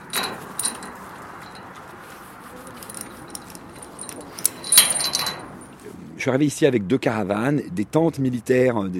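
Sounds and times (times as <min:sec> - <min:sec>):
metal tools clinking and rattling taken out of a caravan: 0:00.0 - 0:01.8, 0:02.6 - 0:05.8
speech: 0:06.2 - 0:08.9.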